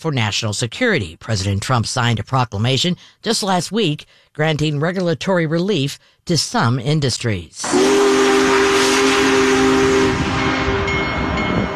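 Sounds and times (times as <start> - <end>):
speech: 0.0 - 8.0
steam locomotive whistle: 7.6 - 11.7.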